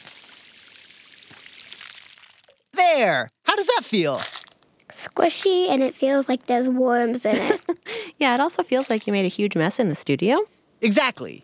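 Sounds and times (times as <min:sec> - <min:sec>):
water sprinkled onto freshly poured dirt: 0:00.0 - 0:02.8, 0:03.9 - 0:05.9, 0:08.6 - 0:09.2
speech: 0:03.0 - 0:04.3, 0:04.9 - 0:11.4.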